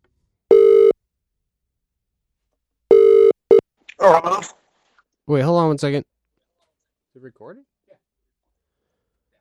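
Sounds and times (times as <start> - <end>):
electronic ringback tones of an outgoing phone call: 0.5 - 1.0, 2.9 - 3.6
speech: 4.0 - 4.6, 5.3 - 6.1, 7.2 - 7.7.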